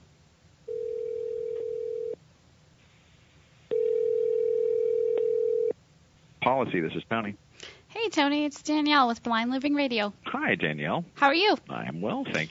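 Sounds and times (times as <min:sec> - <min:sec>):
loud telephone tones while placing a call: 0:00.7 - 0:02.2, 0:03.7 - 0:05.8
speech: 0:06.6 - 0:12.4.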